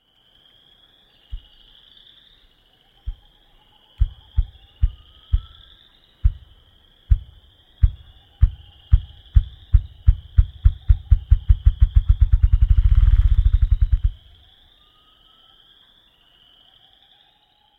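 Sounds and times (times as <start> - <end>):
ruffed grouse drumming: 4.0 - 14.3.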